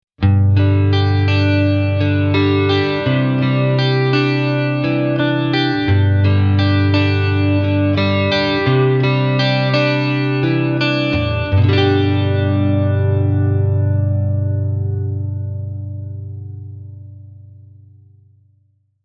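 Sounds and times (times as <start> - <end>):
clean electric guitar through a guitar amplifier: 0.2 - 18.7.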